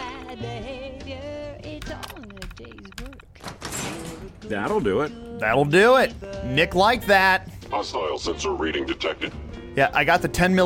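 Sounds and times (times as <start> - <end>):
speech: 0.3 - 10.6
mechanical clunks of a video game security door: 1.8 - 4.8
video game security door opening: 1.9 - 4.5.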